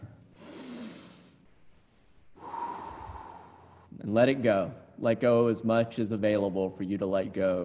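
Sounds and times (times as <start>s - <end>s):
deep breath drawn in: 0.4s - 1.4s, 2.3s - 3.9s
speech: 4.0s - 7.6s.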